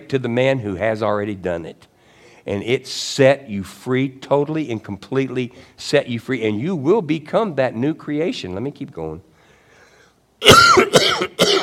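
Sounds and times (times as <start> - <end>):
speech: 0.1 - 9.3
person coughing: 10.4 - 11.6.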